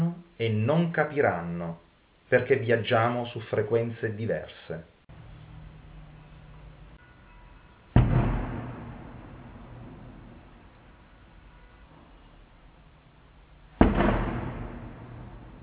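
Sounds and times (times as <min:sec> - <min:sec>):
speech: 0:00.4 - 0:05.2
firework bomb booms for a patron saint's feast: 0:08.0 - 0:10.9, 0:13.8 - 0:15.6.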